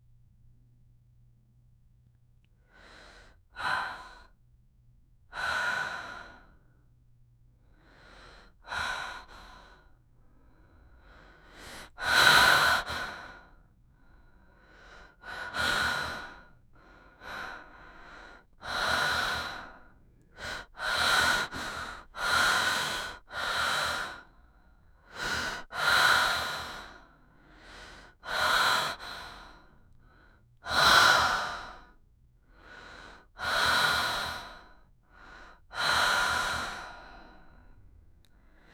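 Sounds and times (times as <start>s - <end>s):
soft regular breathing: 7.6s - 38.7s.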